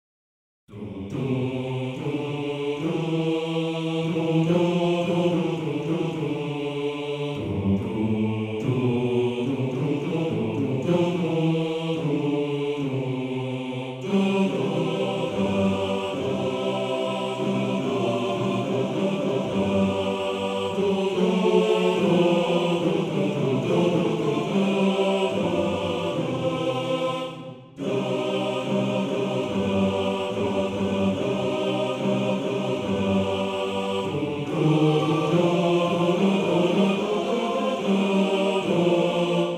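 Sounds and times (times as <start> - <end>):
male choir singing: 0.7 - 39.5.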